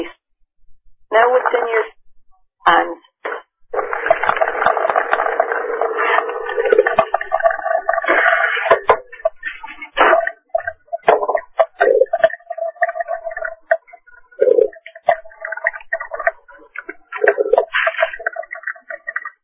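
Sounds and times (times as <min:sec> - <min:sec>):
speech: 0:01.1 - 0:01.9
running water heard on a phone line: 0:03.7 - 0:19.4.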